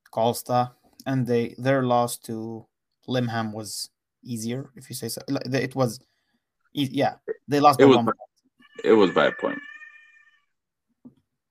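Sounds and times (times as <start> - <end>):
speech: 0.2 - 6.1, 6.7 - 8.2, 8.8 - 9.7
cat meowing loudly: 8.6 - 10.5.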